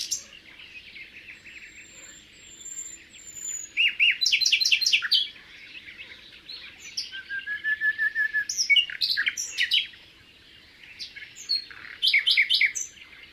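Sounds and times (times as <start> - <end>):
common nightingale song in rapid repeated notes and short trills: 0.0 - 13.3.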